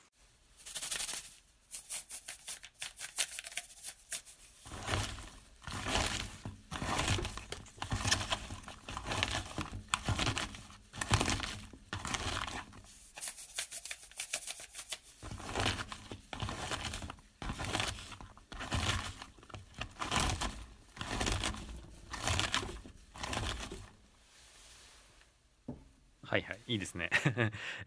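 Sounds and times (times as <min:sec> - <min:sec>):
chopped napa cabbage being salted and kneaded by hand: 0:03.8 - 0:24.8
speech: 0:26.3 - 0:27.8
laughter: 0:27.1 - 0:27.8.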